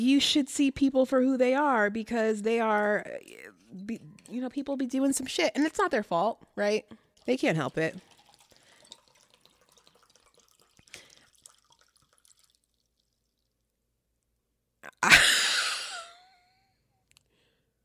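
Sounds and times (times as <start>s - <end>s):
speech: 0.0s - 8.1s
faint drips and clicks: 6.6s - 13.8s
liquid poured from a bottle: 7.0s - 13.8s.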